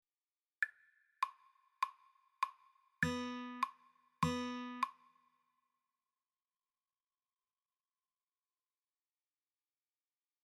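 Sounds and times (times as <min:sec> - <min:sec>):
rhythm guitar intro: 0:03.0 - 0:04.9.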